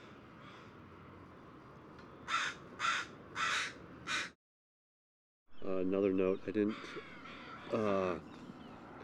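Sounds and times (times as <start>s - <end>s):
bird cawing from nesting colony in spruce: 0.0s - 0.9s, 2.2s - 4.4s, 6.6s - 8.8s
speech: 5.7s - 8.4s.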